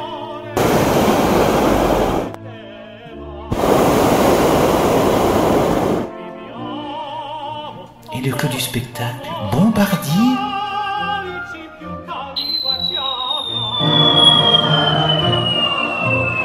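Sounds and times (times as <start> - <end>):
hot air balloon burner roaring blasts: 0.6 - 2.4, 3.5 - 6.1, 13.7 - 16.4
speech: 8.2 - 10.5
sustained musical tones: 13.4 - 16.4.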